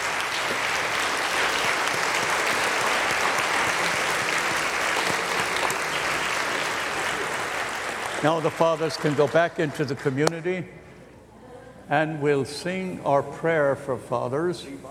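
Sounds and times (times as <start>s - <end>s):
applause from a sizable indoor audience: 0.0s - 10.2s
speech: 8.2s - 10.8s, 11.9s - 14.9s.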